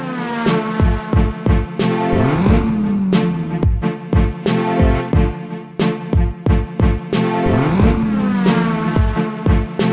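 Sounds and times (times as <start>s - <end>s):
car engine revving hard at full throttle: 0.0s - 4.6s, 7.1s - 9.9s
steady synth backing: 0.0s - 9.9s.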